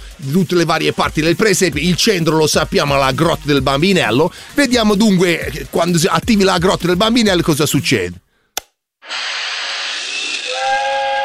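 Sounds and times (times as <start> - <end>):
speech: 0.2 - 8.2
steam train whistle: 10.4 - 11.2.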